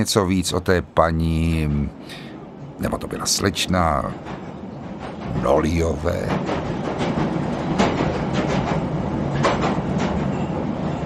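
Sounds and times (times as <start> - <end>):
speech: 0.0 - 4.5, 5.3 - 7.0
train rumbling along rails: 0.0 - 11.0
train wheels clacking over rail joints: 2.4 - 11.0.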